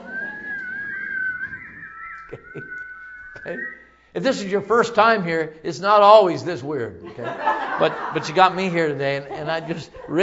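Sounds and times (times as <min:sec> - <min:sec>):
person whistling one long steady note: 0:00.0 - 0:04.1
laughter: 0:01.6 - 0:03.7, 0:07.0 - 0:10.2
speech: 0:02.3 - 0:02.8, 0:03.4 - 0:10.2.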